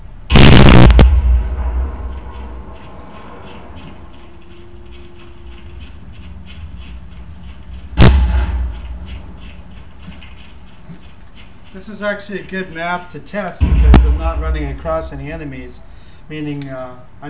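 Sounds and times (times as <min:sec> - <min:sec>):
low rumble: 0:00.0 - 0:11.6, 0:13.6 - 0:16.0
grenade explosions in a video game: 0:00.3 - 0:03.2, 0:08.0 - 0:09.4, 0:13.6 - 0:15.6
speech: 0:11.8 - 0:17.2.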